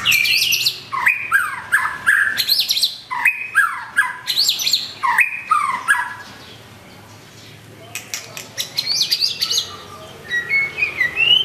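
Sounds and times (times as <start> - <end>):
White-rumped shama song with rich whistled phrases: 0.0 - 7.2, 7.9 - 11.4
White-rumped shama brief sharp clicks: 7.9 - 8.7.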